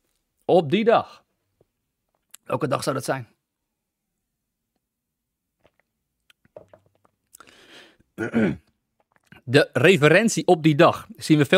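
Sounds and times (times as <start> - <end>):
speech: 0.5 - 1.2, 2.5 - 3.3, 8.2 - 8.6, 9.5 - 11.5
wet mouth clicks: 5.6 - 7.5.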